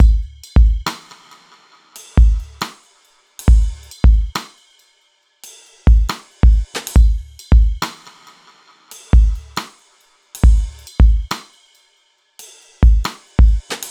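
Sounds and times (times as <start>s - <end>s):
dubstep drum loop break: 0.0s - 4.8s, 5.9s - 8.4s, 9.0s - 11.6s, 12.8s - 13.8s.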